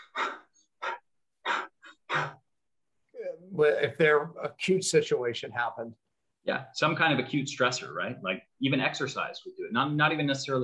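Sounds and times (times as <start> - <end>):
person demonstrating rapid shallow stressed breathing: 0.0 - 2.4
speech: 3.6 - 10.6.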